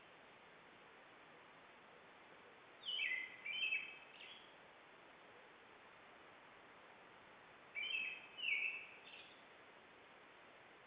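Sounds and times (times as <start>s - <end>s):
constant hiss: 0.0s - 10.8s
European robin singing: 2.8s - 4.6s, 7.7s - 9.5s.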